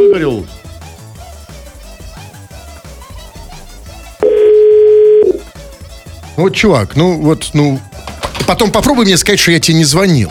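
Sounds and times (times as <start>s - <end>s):
telephone ringing tone while placing a call: 0.0s - 0.4s, 4.2s - 5.4s
speech: 6.4s - 7.9s, 8.5s - 10.2s.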